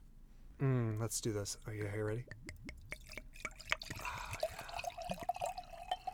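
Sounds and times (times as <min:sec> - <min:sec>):
speech: 0:01.0 - 0:02.6
Sauvignon Blanc wine glugging and splashing into a glass: 0:01.8 - 0:06.1.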